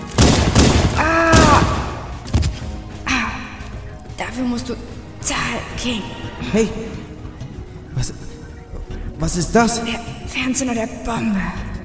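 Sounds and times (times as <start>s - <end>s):
gunshots fired at legs in a staged confrontation: 0.0s - 2.6s
speech: 4.4s - 7.0s, 8.0s - 8.3s, 9.2s - 11.8s.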